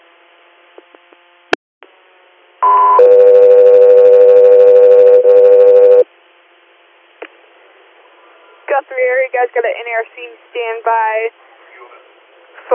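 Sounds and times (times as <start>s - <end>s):
radio dispatch paging alert tones: 2.6s - 6.0s
speech: 9.0s - 11.6s.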